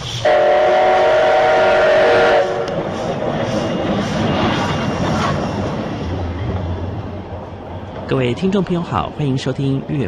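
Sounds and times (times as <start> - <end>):
steam train whistle blast: 0.0 - 2.8
train wheels rumbling and clattering along rails: 2.6 - 10.0
speech: 8.1 - 10.0.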